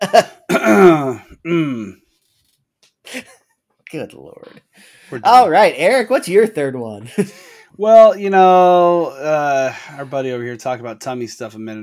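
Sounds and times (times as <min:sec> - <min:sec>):
person clearing throat: 0:00.0 - 0:02.0
person coughing: 0:00.0 - 0:02.0
speech: 0:00.1 - 0:00.3, 0:04.0 - 0:11.8.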